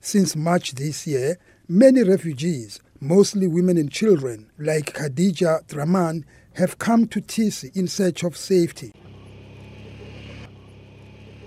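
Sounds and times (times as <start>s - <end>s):
speech: 0.0s - 9.1s
4x4 relief vehicle carrying supplies driving through a region with few roads: 8.7s - 11.4s.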